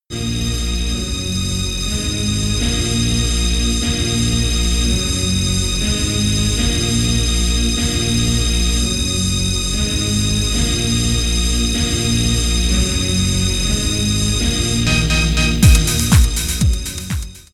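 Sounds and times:
bass: 0.0 - 17.5
high-pitched synth: 0.2 - 17.5
beat: 14.7 - 17.5.

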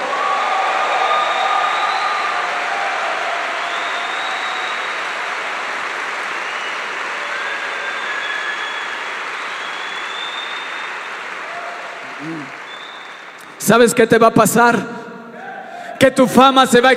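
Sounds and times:
audience applauding loudly at a Christian worship conference: 0.0 - 14.0
high whistles from audience: 1.0 - 2.4, 3.5 - 5.1, 6.4 - 11.3, 12.2 - 13.4
speech: 13.7 - 15.0, 16.0 - 16.9.

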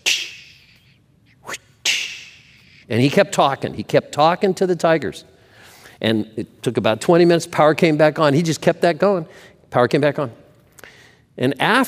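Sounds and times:
whip cracking during a tiger act in a big cage: 0.0 - 0.7, 1.4 - 2.6
speech: 2.9 - 5.3, 6.0 - 10.4, 11.4 - 11.8.

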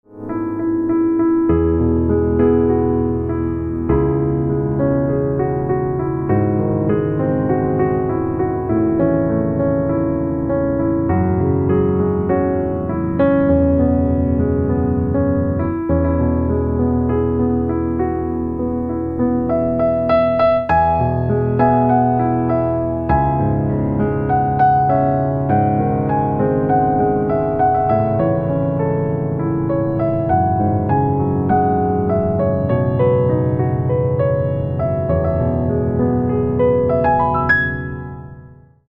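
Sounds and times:
piano instrumental ringtone: 0.1 - 38.8.

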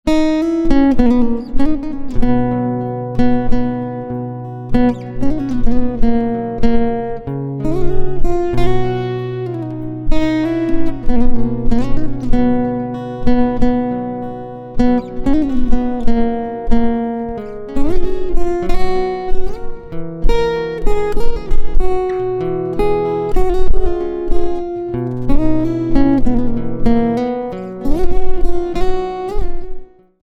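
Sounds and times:
silent guitar: 0.0 - 30.2.

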